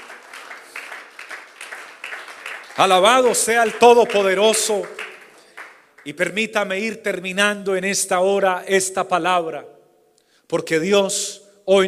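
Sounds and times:
audience applauding in a large room: 0.0 - 6.4
speech: 2.8 - 5.0, 6.0 - 9.8, 10.5 - 11.8.

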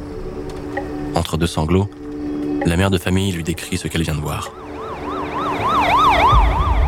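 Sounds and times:
speech: 0.8 - 2.0, 2.6 - 4.6
police car siren wailing: 4.3 - 6.8.

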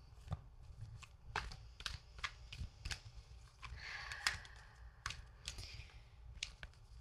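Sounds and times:
deck of cards being shuffled: 0.0 - 6.9.

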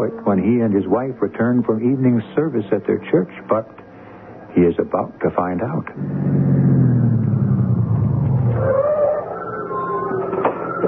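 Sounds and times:
speech: 0.0 - 3.8, 4.5 - 6.8
faint whine: 0.0 - 10.8
car engine rumbling on arriving home: 5.9 - 8.9.

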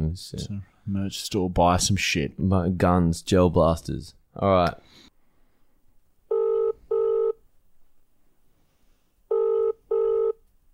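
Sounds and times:
faint noise: 0.0 - 10.7
speech: 0.1 - 5.1
outgoing phone call ringback tone: 6.3 - 7.4, 9.3 - 10.4.

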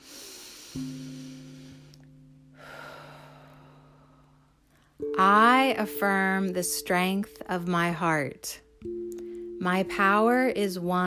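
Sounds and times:
deep breath in and out: 0.0 - 5.0
steady low sustained musical drone tones: 0.6 - 11.0
speech: 0.7 - 1.2, 5.2 - 9.0, 9.6 - 11.0.

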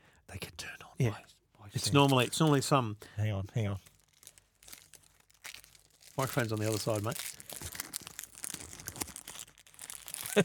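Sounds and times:
speech: 0.4 - 3.9, 6.2 - 7.3
chocolate wrapper being crinkled: 3.6 - 10.4.

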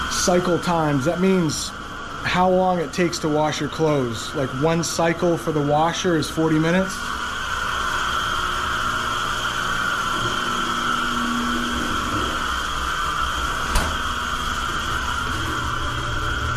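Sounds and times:
clothes dryer running with whirring hum: 0.0 - 16.5
speech: 0.2 - 7.2.

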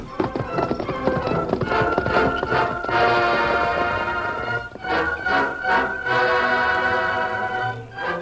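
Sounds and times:
galloping horse hoofbeats: 0.0 - 6.1
dramatic orchestral music: 0.2 - 8.2.

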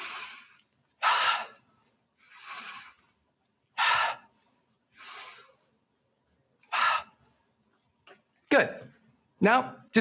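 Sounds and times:
deep breathing during a stress-relief exercise: 0.0 - 5.8, 6.6 - 7.5
speech: 8.6 - 10.0.

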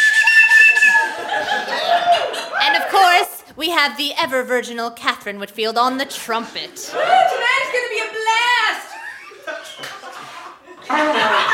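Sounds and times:
shrill reedy train whistle blast: 0.0 - 1.1
laughter: 0.5 - 3.2, 6.2 - 11.5
speech: 3.6 - 8.7, 10.9 - 11.5.

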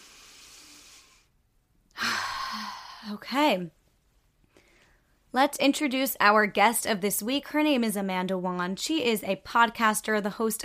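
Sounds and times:
deep breath in and out during a guided breathing exercise: 0.0 - 1.4, 2.0 - 3.2
speech: 2.5 - 3.8, 5.3 - 10.6.

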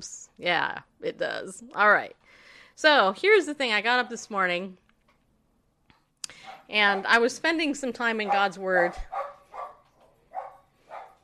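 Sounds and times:
speech: 0.0 - 4.8, 6.3 - 9.2
dog barking: 6.4 - 7.2, 8.2 - 11.2.

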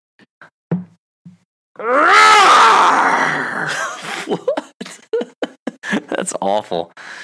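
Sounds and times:
speech: 1.8 - 2.2, 6.4 - 7.2
person imitating a tiger roar: 1.8 - 3.8
laughter: 3.7 - 6.4.

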